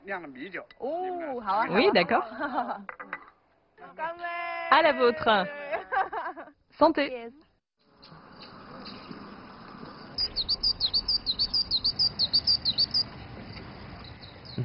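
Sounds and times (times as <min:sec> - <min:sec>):
speech: 0:00.1 - 0:03.0, 0:03.9 - 0:05.6, 0:06.8 - 0:07.4
laughter: 0:01.7 - 0:02.9, 0:05.1 - 0:06.6
bird singing bright high chirps: 0:08.0 - 0:14.6.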